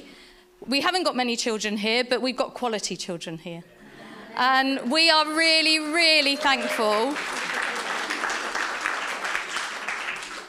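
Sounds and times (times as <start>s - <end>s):
speech: 0.7s - 3.7s, 4.4s - 7.4s
many hands clapping in loud applause: 6.2s - 10.4s.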